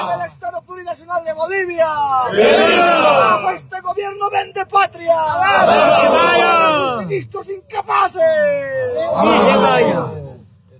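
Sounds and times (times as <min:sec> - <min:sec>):
speech: 0:01.0 - 0:10.2
crowd shouting revolutionary battle cry: 0:02.3 - 0:03.6, 0:05.4 - 0:07.1, 0:09.0 - 0:10.2.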